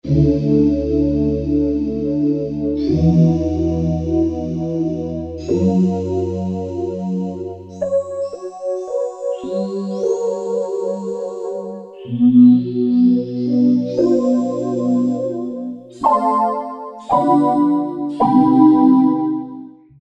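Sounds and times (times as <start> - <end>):
Roland MKS-70 synthesizer voices: 0.0 - 19.6.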